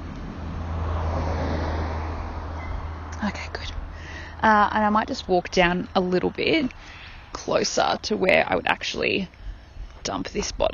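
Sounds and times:
car tire roar on a road: 0:00.0 - 0:06.7
car engine rumble on a road: 0:00.0 - 0:10.7
speech: 0:03.2 - 0:03.7, 0:04.4 - 0:09.4, 0:10.0 - 0:10.7.

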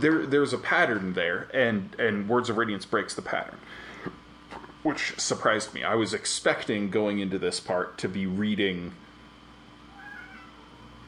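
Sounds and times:
speech: 0:00.0 - 0:04.2, 0:04.8 - 0:09.0
low hum: 0:00.0 - 0:11.0
cat meowing: 0:09.9 - 0:10.9.

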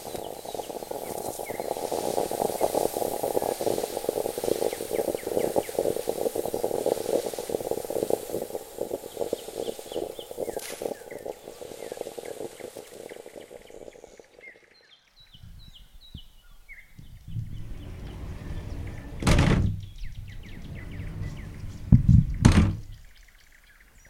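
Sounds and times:
larger stovetop moka pot bubbling and sputtering: 0:00.0 - 0:14.5
faint chirps: 0:00.0 - 0:24.0
bathroom sliding door rumbling along its track: 0:17.2 - 0:23.0
bathroom sliding door bumping open and shut: 0:20.6 - 0:23.0.

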